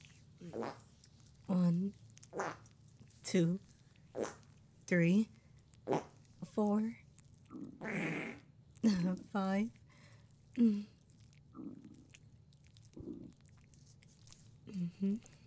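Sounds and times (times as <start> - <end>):
speech: 0.4 - 0.9, 1.5 - 9.8, 10.6 - 10.9, 14.7 - 15.4
loud buzzy fart-like bursts made with a mouth: 7.8 - 8.4.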